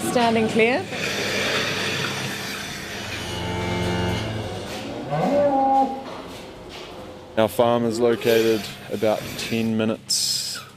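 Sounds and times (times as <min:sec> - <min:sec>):
milking machinery hiss and hum: 0:00.0 - 0:10.7
speech: 0:00.1 - 0:01.0, 0:07.4 - 0:10.2
cows mooing in a dairy milking shed during milking: 0:00.8 - 0:06.2.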